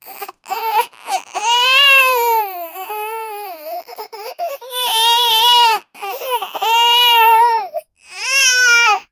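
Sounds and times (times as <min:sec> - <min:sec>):
infant crying: 0:00.0 - 0:09.1.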